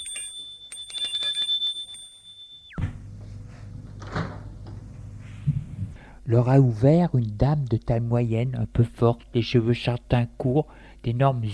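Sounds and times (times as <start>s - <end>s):
electric doorbell ringing: 0.0s - 3.6s
rustling room noise: 0.0s - 6.6s
door opening with clunks: 3.8s - 4.9s
speech: 6.3s - 11.5s.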